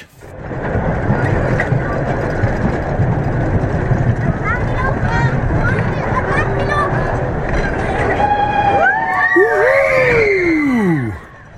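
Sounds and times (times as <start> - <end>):
rumble and rattle of a speeding roller coaster: 0.0 - 11.5
crowd of riders screaming on a speeding roller coaster: 8.2 - 11.3.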